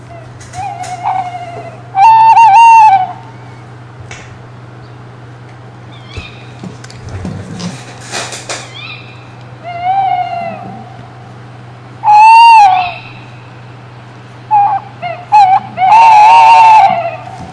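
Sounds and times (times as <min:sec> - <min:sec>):
nocturnal bird of prey owl calls: 0:00.0 - 0:03.6, 0:05.9 - 0:06.6, 0:08.6 - 0:11.2, 0:12.0 - 0:13.7, 0:14.4 - 0:17.5
steady low hum: 0:00.0 - 0:17.5.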